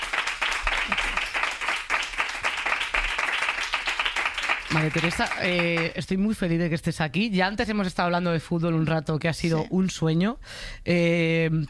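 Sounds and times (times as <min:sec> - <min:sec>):
crowd applauding: 0:00.0 - 0:06.0
speech: 0:04.7 - 0:11.6.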